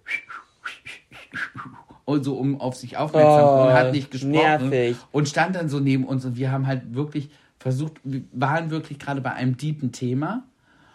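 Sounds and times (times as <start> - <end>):
voice imitating whistling of a mime: 0.0 - 2.0
speech: 2.1 - 10.5.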